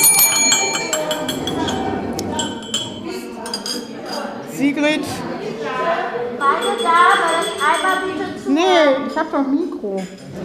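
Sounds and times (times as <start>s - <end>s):
hand bell ringing for attention: 0.0s - 1.7s, 6.4s - 8.1s
room full of people murmuring: 0.0s - 10.4s
speech: 4.8s - 5.2s, 6.7s - 10.2s.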